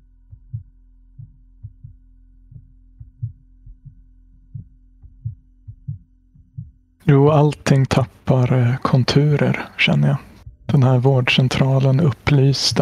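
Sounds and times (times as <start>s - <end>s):
constant faint hum: 0.0s - 12.7s
quickening heartbeat thumping: 0.3s - 6.9s
speech: 7.1s - 12.7s.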